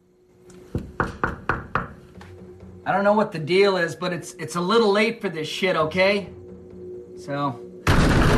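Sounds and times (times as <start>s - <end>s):
knocking on a wooden dividing door: 0.8s - 2.0s
speech: 2.9s - 6.4s, 7.2s - 7.6s.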